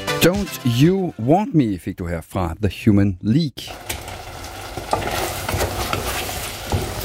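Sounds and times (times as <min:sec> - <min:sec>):
speech: 0:00.2 - 0:03.9
butter sizzling in a frying pan: 0:03.7 - 0:07.0.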